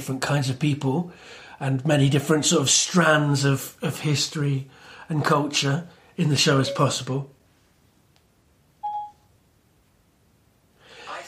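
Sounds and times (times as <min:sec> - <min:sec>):
speech: 0:00.0 - 0:07.4
smartphone voice assistant activation chime: 0:06.5 - 0:07.2, 0:08.8 - 0:09.2.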